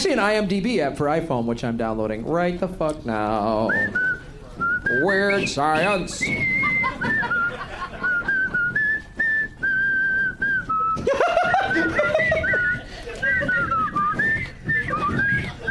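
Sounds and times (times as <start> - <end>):
speech: 0.0 - 4.1, 4.8 - 7.6
people whistling a jaunty march tune: 3.6 - 15.6
people laughing and chuckling: 5.4 - 8.9, 10.8 - 15.6.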